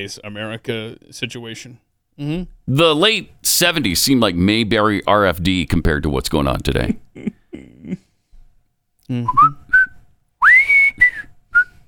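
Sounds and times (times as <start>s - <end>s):
speech: 0.0s - 8.0s, 9.1s - 9.6s
person whistling a cheerful TV theme tune: 9.1s - 11.8s.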